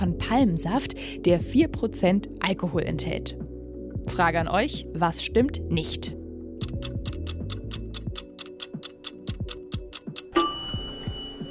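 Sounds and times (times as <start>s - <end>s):
speech: 0.0s - 3.4s, 4.0s - 6.2s
ticking countdown timer: 6.6s - 10.9s
sharp bright chime: 10.3s - 11.4s.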